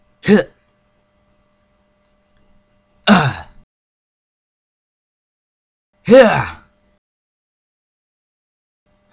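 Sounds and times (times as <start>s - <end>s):
person grunting: 0.2s - 0.5s, 3.1s - 3.6s, 6.1s - 6.6s
person taunting: 0.2s - 0.6s, 3.1s - 3.6s, 6.1s - 6.6s.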